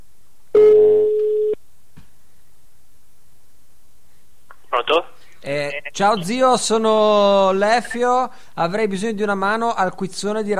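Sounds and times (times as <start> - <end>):
telephone ringback tone on the line: 0.6 - 1.6
speech: 4.9 - 10.5.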